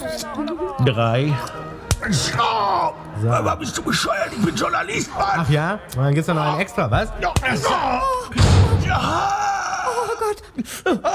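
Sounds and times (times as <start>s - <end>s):
speech: 0.2s - 9.4s, 10.3s - 11.1s
door slamming shut on someone's foot with a heavy thud: 8.3s - 9.2s.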